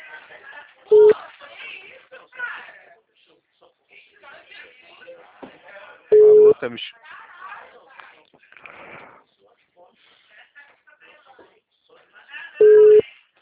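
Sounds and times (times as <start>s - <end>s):
telephone tone after a dropped call: 0.9s - 1.2s, 6.1s - 6.6s, 12.6s - 13.0s
speech: 6.6s - 7.0s.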